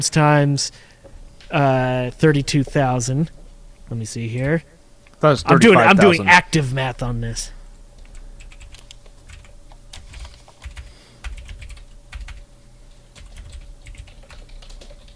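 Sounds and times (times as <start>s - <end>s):
speech: 0.0s - 0.9s, 1.5s - 7.6s
low constant hum: 0.0s - 15.1s
typing on a computer keyboard: 8.0s - 12.4s, 13.1s - 15.1s.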